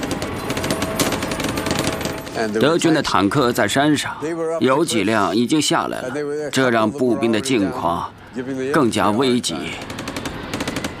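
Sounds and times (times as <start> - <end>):
machine gun fire at a river crossing: 0.0 - 2.6, 9.6 - 10.9
speech: 2.4 - 10.0.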